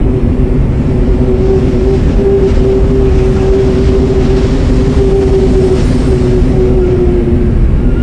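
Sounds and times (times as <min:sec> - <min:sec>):
wind howling: 0:00.0 - 0:08.0.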